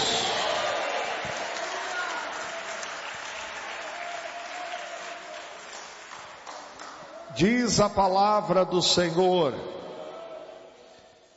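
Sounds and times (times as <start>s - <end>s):
audience applauding: 0.0s - 7.3s
speech: 7.4s - 9.8s.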